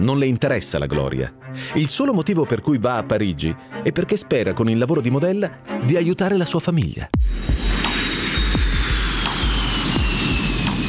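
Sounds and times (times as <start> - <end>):
speech: 0.0 - 8.0
airplane jet engines roaring: 7.3 - 10.8.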